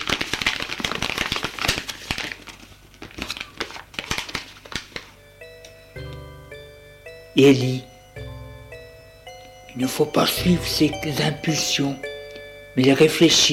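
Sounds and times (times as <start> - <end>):
crumpled paper crinkling as it is unfolded and smoothed: 0.0 - 5.2
soft sustained musical tones: 5.2 - 13.5
speech: 7.4 - 7.9, 9.8 - 12.1, 12.8 - 13.5.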